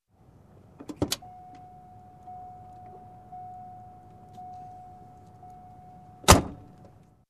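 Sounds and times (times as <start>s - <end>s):
car door opening and closing: 0.8s - 5.6s, 6.2s - 7.0s.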